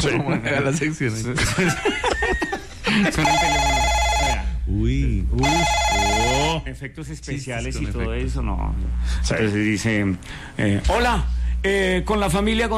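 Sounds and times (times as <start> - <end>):
people chuckling: 0.0 - 3.4
speech: 0.0 - 3.8, 4.7 - 12.7
telephone bell ringing: 3.2 - 4.5, 5.4 - 6.6.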